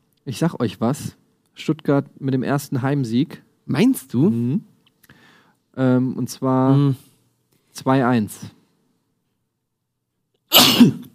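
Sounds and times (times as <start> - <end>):
speech: 0.2 - 4.7, 5.8 - 7.1, 7.8 - 8.6, 10.8 - 11.1
person sneezing: 10.5 - 11.1.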